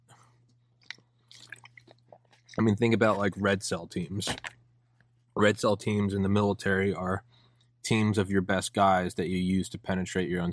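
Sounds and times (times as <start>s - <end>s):
lip smacks: 0.8s - 2.6s
person sipping a drink of water: 0.8s - 2.6s
speech: 2.6s - 4.6s, 5.4s - 7.3s, 7.9s - 10.5s.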